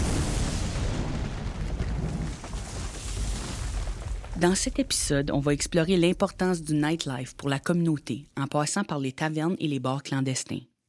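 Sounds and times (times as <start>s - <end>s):
atomic bomb explosion with deep sustained rumble: 0.0s - 7.1s
crackling debris: 0.0s - 7.1s
speech: 4.4s - 10.8s.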